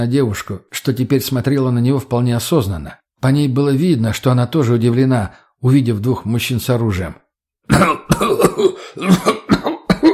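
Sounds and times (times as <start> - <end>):
speech: 0.0 - 9.5
man's harsh hacking cough: 7.7 - 10.1.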